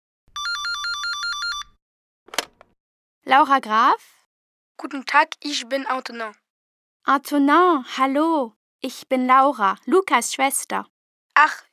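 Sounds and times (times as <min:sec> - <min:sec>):
telephone ringing with electronic trill: 0:00.3 - 0:01.8
speech: 0:03.3 - 0:04.2, 0:04.8 - 0:06.4, 0:07.1 - 0:11.7.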